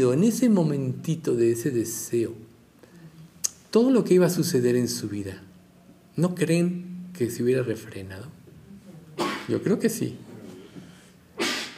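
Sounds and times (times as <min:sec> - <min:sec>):
speech: 0:00.0 - 0:02.5, 0:03.7 - 0:05.5, 0:06.2 - 0:08.4, 0:09.5 - 0:10.3
faint low murmur: 0:00.0 - 0:11.4
loud breathy sneeze: 0:09.2 - 0:09.6, 0:11.4 - 0:11.7.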